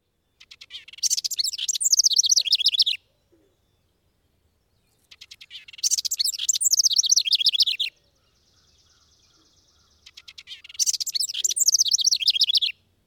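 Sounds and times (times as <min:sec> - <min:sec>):
house wren singing bubbling rapid song: 0:00.0 - 0:12.9.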